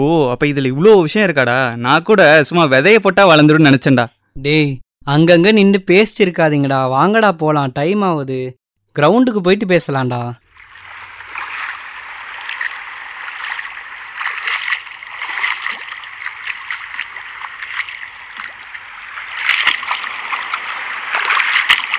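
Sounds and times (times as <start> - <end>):
speech: 0.0 - 10.4
water splashing on a playing ground flooded with rainwater: 10.4 - 21.9.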